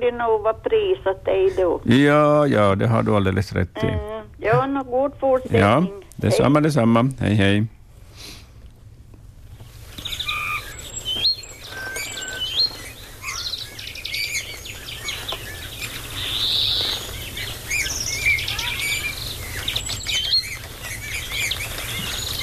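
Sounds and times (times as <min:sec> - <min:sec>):
speech: 0:00.0 - 0:08.4
great tit and greenfinch chirping and trilling: 0:09.5 - 0:22.4
bullfinch piping: 0:09.6 - 0:22.4.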